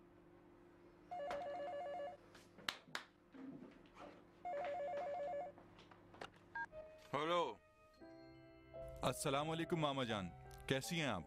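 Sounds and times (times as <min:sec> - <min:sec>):
telephone ringing with warbling trills: 0:01.1 - 0:02.2, 0:04.4 - 0:05.6
speech: 0:07.1 - 0:07.6, 0:09.0 - 0:11.2.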